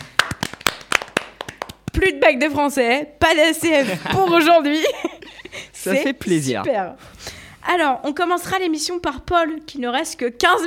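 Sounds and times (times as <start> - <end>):
a few people clapping hands: 0.0 - 2.1
speech: 2.0 - 5.1, 5.8 - 10.6
laughter: 3.7 - 5.8.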